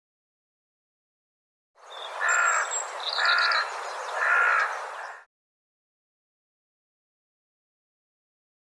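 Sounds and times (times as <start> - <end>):
bird calling harsh notes: 2.1 - 5.3.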